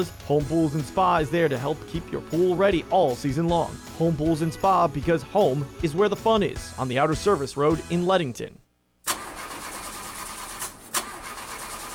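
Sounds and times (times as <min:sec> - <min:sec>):
speech: 0:00.0 - 0:08.6
car engine cranking without catching: 0:09.1 - 0:11.9.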